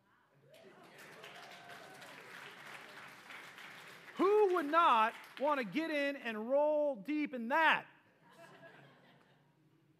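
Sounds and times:
whoops: 0.5s - 2.4s
audience applause: 0.5s - 5.7s
speech: 4.6s - 7.9s
laughter: 8.2s - 9.6s.

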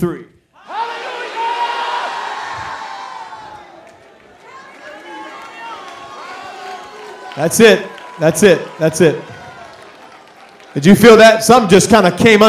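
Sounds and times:
speech: 0.0s - 0.3s, 7.4s - 9.3s, 10.8s - 12.4s
large crowd shouting hallelujah together: 0.6s - 10.7s
scattered cheering: 0.6s - 12.4s.

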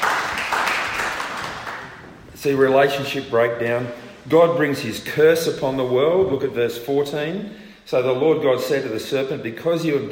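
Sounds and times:
crowd clapping: 0.0s - 2.2s
speech: 2.4s - 10.1s.

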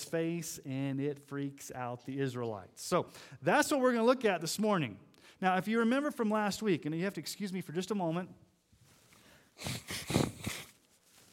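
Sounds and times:
speech: 0.1s - 8.5s, 9.6s - 10.1s
nose blowing into a microphone: 9.5s - 10.9s.

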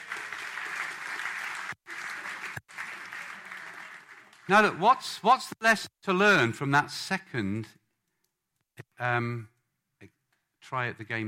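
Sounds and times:
crowd applause: 0.0s - 5.4s
speech: 4.5s - 7.8s, 9.0s - 10.1s, 10.7s - 11.2s.

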